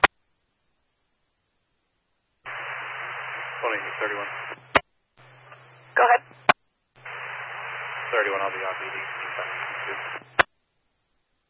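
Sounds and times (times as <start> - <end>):
band-limited radio static hiss: 2.4 - 10.5
speech: 3.6 - 4.6, 8.2 - 10.2.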